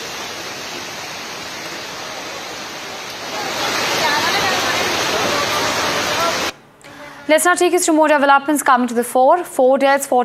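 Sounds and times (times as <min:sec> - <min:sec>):
rushing floodwater of a swollen river: 0:00.0 - 0:06.6
speech: 0:07.3 - 0:10.2.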